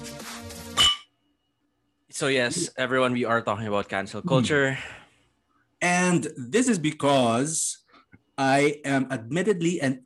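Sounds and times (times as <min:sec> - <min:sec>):
glasses clinking together in a toast: 0:00.8 - 0:01.2
speech: 0:02.2 - 0:05.0, 0:05.8 - 0:07.8, 0:08.4 - 0:10.0.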